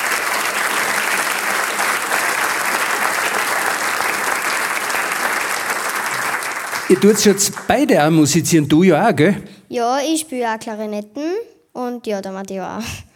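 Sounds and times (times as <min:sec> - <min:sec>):
audience applause: 0:00.0 - 0:09.4
speech: 0:06.9 - 0:13.1.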